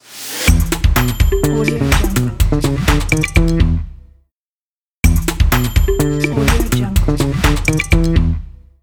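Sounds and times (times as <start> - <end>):
percussive bass guitar logo jingle: 0.5 - 4.0, 5.0 - 8.5.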